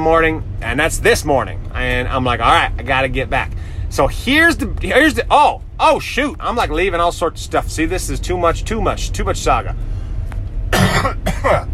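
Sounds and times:
speech: 0.0 - 10.0, 11.0 - 11.7
low rumble: 0.0 - 11.7
person coughing: 10.7 - 11.7.

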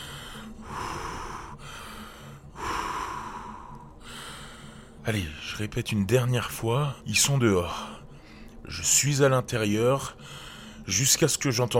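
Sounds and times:
deep breathing in a tense horror scene: 0.0 - 5.0, 7.9 - 8.6, 10.2 - 10.9
speech: 5.0 - 8.0, 8.7 - 11.7.

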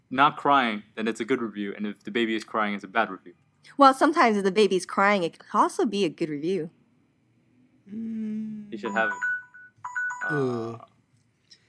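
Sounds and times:
speech: 0.1 - 6.8, 7.9 - 9.3, 10.3 - 10.9
new S6 smartphone ringtone chiming: 8.8 - 10.7.

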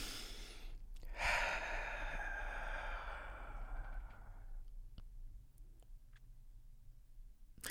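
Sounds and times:
inhaling and exhaling during a guided breathing exercise: 0.0 - 4.7.

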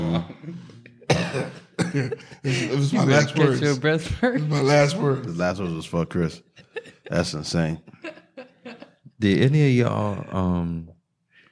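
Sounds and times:
throat clearing: 0.0 - 2.2
person coughing after choking on weed smoke: 1.0 - 3.2
speech: 1.4 - 8.2, 9.2 - 10.9
laughter: 1.8 - 10.6.

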